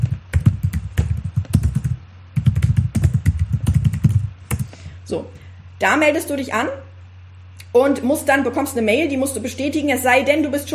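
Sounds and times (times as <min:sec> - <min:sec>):
typing on a computer keyboard: 0:00.0 - 0:04.7
speech: 0:05.1 - 0:06.9, 0:07.7 - 0:10.7.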